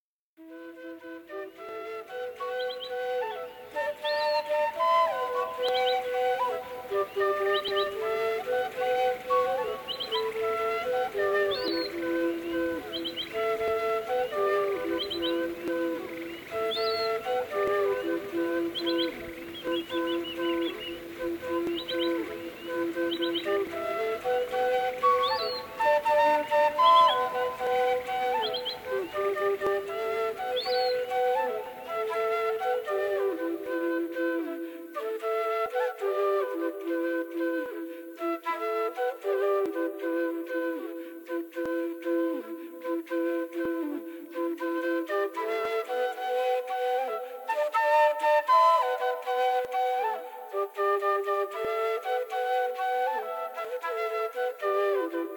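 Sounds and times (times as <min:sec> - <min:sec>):
duo of quena players: 0:00.4 - 0:55.3.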